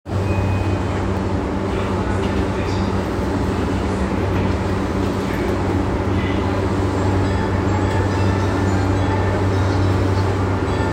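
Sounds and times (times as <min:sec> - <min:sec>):
subway train sounds at Korakuen station: 0:00.1 - 0:10.9.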